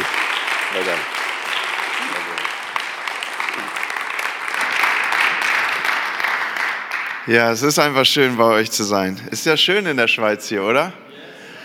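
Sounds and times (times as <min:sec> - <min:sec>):
crowd applauding in a reverberant church hall: 0:00.0 - 0:08.3
speech: 0:00.7 - 0:01.2, 0:07.3 - 0:11.0.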